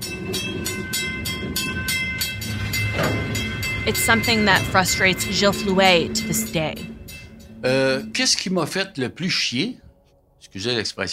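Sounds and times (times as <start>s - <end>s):
train wheels clickety-clack on rails: 0.0s - 7.5s
faint tonal whine: 0.0s - 10.1s
speech: 3.9s - 6.9s, 7.6s - 9.8s, 10.5s - 11.1s.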